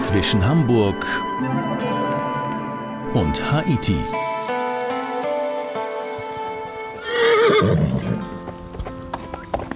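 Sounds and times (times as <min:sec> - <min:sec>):
speech: 0:00.1 - 0:02.0, 0:03.1 - 0:04.2
horse hooves galloping: 0:04.2 - 0:09.7
horse neighing: 0:07.0 - 0:08.2.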